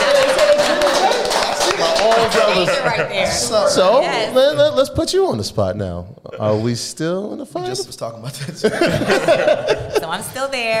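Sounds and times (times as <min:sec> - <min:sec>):
hand clapping from a small group: 0:00.0 - 0:02.7
laughter: 0:00.0 - 0:04.7, 0:06.3 - 0:10.7
speech: 0:02.6 - 0:10.7.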